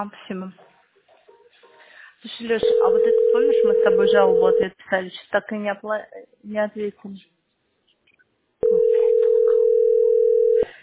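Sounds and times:
speech: 0.0 - 0.7, 2.2 - 7.3
telephone dial tone from a phone set to auto-redial: 2.7 - 4.6, 8.6 - 10.7.

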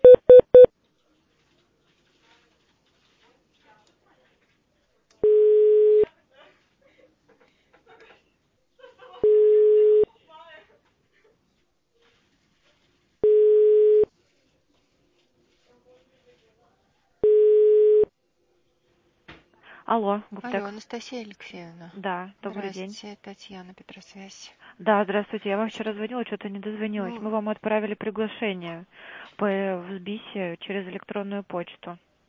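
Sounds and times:
quick telephone beeps as a call is transferred: 0.0 - 0.7, 5.2 - 6.0, 9.2 - 10.1, 13.2 - 14.1, 17.2 - 18.1
steady mid-pitched telephone ringing tones as a call is transferred: 5.2 - 6.0, 9.2 - 10.1, 13.2 - 14.1, 17.2 - 18.1
speech: 19.9 - 32.1.

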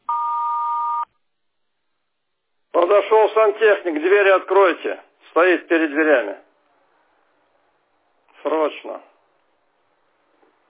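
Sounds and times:
answering machine beep: 0.0 - 1.1
speech: 3.0 - 6.4, 8.5 - 9.1.

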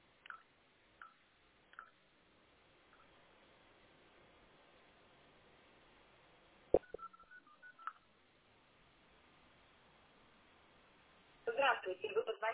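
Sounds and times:
telephone keypad tones dialing a city number: 6.8 - 8.0
people talking: 11.5 - 12.5.

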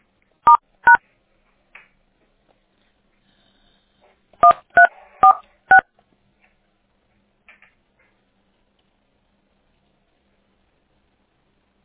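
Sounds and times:
touch-tone telephone dialing beeps while transferring a call: 4.4 - 5.8.

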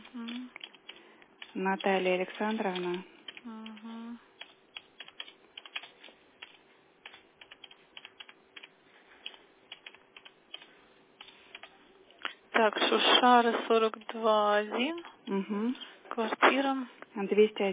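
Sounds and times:
typing a person's full name on a computer keyboard: 0.2 - 11.8
speech: 1.6 - 3.7, 12.6 - 17.7.

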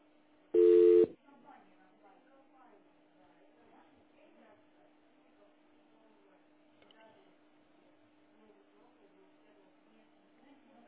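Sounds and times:
telephone voicemail beep: 0.6 - 1.1.

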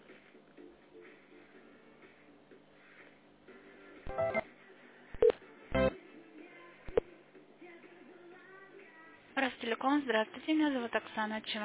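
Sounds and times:
electronic telephone call transfer tones and clicks over a phone line: 4.1 - 4.4
speech: 9.6 - 11.6.

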